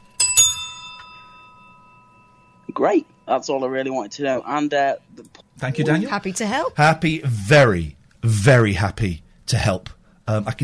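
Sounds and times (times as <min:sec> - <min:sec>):
small bell with a bright bicycle-bell-like tone ringing: 0:00.0 - 0:04.4
speech: 0:02.7 - 0:10.6.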